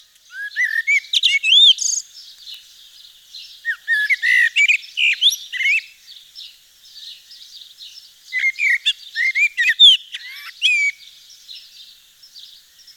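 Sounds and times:
Eurasian blackbird song: 0.0 - 12.9.

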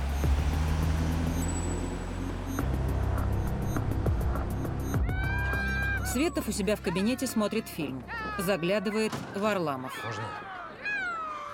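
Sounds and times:
car driving away with low engine rumble and high whine: 0.0 - 6.0
speech: 6.1 - 10.6.

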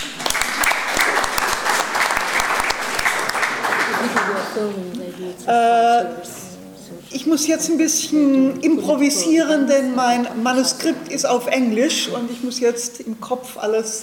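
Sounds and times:
audience applause at an evening film screening: 0.0 - 4.7
speech: 4.6 - 6.4, 7.0 - 14.0.

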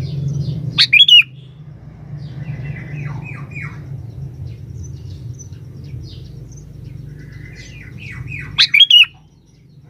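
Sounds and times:
sooty-headed bulbul song of clear whistled notes: 0.8 - 1.4, 8.0 - 9.2.

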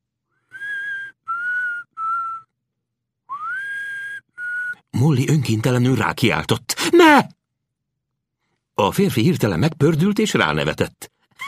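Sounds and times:
man softly whistling a nursery tune: 0.4 - 2.6, 3.3 - 4.9
speech: 5.0 - 7.4, 8.8 - 11.1.

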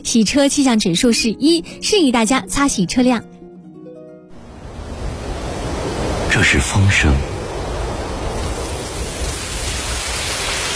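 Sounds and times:
speech: 0.0 - 3.4, 6.4 - 7.3
steady rain: 4.4 - 10.7.

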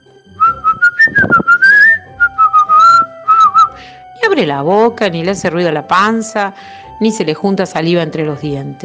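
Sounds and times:
clear bright whistling: 0.4 - 3.8
speech: 4.4 - 8.8.

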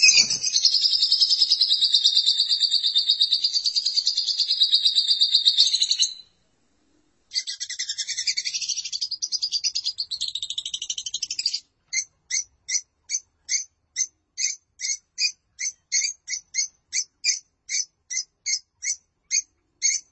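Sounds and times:
lovebird chattering song: 0.0 - 6.2, 7.3 - 20.1.

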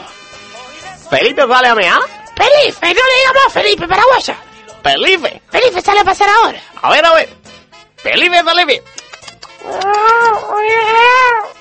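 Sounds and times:
speech: 1.1 - 7.4, 8.0 - 8.9, 9.6 - 11.5
cat meowing: 9.6 - 11.5.

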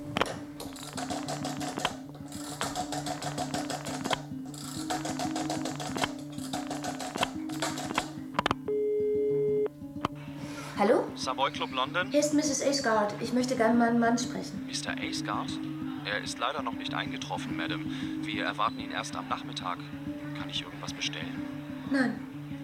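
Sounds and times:
telephone dial clicking: 0.2 - 8.6
steady electronic tone on the telephone line: 8.7 - 9.7
speech: 11.4 - 22.3.

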